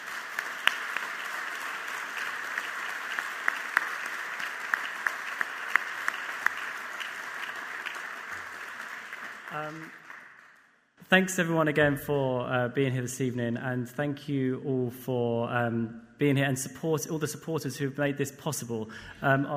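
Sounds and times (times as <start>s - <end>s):
audience applause at an evening event: 0.0s - 10.6s
speech: 9.6s - 10.0s, 11.1s - 19.5s.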